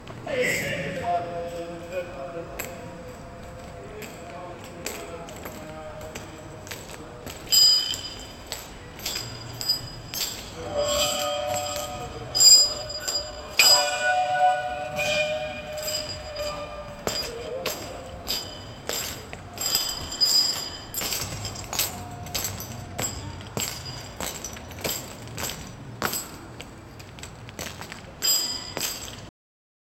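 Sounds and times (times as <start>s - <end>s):
ambient noise: 0.0s - 29.3s
distorted voices: 10.5s - 23.3s.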